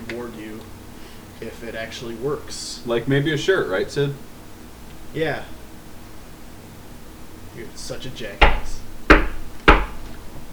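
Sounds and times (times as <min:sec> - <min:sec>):
speech: 0:01.4 - 0:04.3, 0:05.1 - 0:05.6, 0:07.6 - 0:08.8
solid knock on a door: 0:08.4 - 0:10.1.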